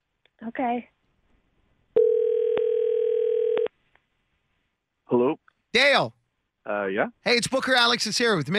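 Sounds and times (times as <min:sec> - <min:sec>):
speech: 0:00.4 - 0:01.0, 0:05.1 - 0:08.5
electronic ring tone on a phone line as an outgoing call rings: 0:02.0 - 0:03.7.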